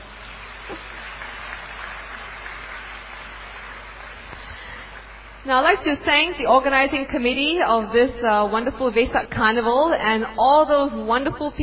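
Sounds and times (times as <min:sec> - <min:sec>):
audience applauding: 0:00.0 - 0:05.4
speech: 0:05.4 - 0:11.6.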